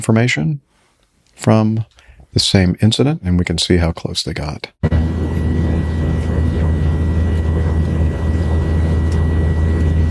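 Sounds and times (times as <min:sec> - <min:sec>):
speech: 0:00.0 - 0:00.7, 0:01.4 - 0:05.2
loud aircraft engine drone: 0:04.8 - 0:10.0.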